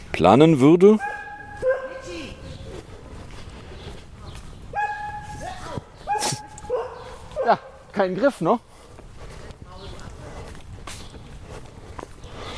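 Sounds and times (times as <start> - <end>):
speech: 0.2 - 1.1, 7.5 - 8.7
dog barking: 1.0 - 2.4, 4.7 - 7.9.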